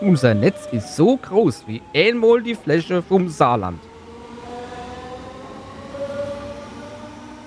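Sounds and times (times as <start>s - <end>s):
speech: 0.0s - 3.9s
S-Bahn commuter train in Saarland rumbling past: 0.0s - 7.4s.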